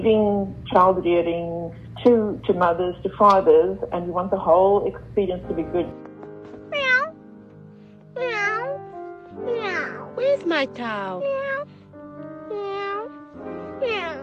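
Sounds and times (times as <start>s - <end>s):
speech: 0.0s - 6.1s, 10.4s - 11.7s
cat meowing: 6.7s - 7.2s, 8.2s - 8.8s, 11.2s - 11.7s, 12.5s - 13.1s, 13.8s - 14.2s.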